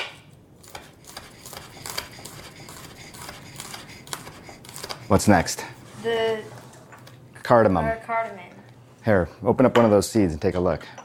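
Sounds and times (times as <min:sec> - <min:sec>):
knife chopping diced ginger: 0:00.0 - 0:05.7
speech: 0:05.1 - 0:06.6, 0:07.5 - 0:11.0.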